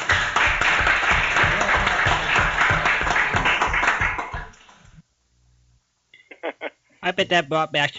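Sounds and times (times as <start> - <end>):
audience applause: 0.0 - 4.8
speech: 7.2 - 7.9.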